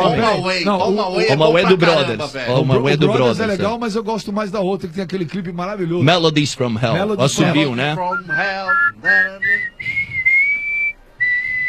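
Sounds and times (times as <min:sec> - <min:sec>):
speech: 0:00.2 - 0:10.0
person whistling a song melody: 0:08.1 - 0:11.6.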